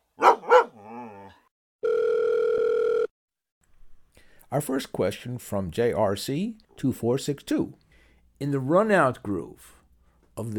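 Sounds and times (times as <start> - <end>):
dog barking: 0.1 - 1.2
telephone dial tone: 1.8 - 3.1
speech: 4.5 - 7.8, 8.4 - 9.8, 10.4 - 10.5.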